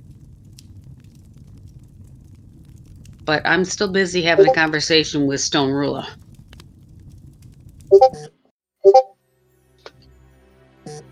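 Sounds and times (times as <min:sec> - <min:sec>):
fireplace crackling with pops and snaps over a low warm rumble: 0:00.0 - 0:08.1
speech: 0:03.3 - 0:06.2, 0:08.0 - 0:08.3.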